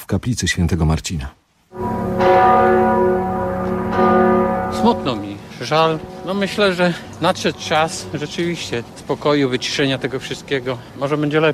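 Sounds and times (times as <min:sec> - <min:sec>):
speech: 0:00.1 - 0:01.4, 0:04.8 - 0:11.5
church bells tolling in Gdańsk during a funeral farewell: 0:01.7 - 0:10.9.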